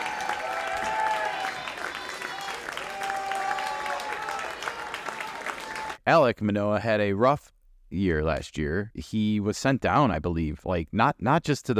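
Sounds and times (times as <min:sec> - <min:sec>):
crowd applauding: 0:00.0 - 0:06.0
faint cheers and whistles: 0:00.0 - 0:06.0
speech: 0:06.1 - 0:11.7.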